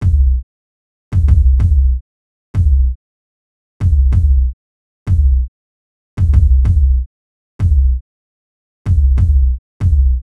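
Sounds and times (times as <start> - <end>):
raw kick drum loop: 0.0 - 0.4, 1.1 - 2.0, 2.6 - 3.0, 3.8 - 4.5, 5.1 - 5.5, 6.2 - 7.0, 7.6 - 8.0, 8.9 - 10.2.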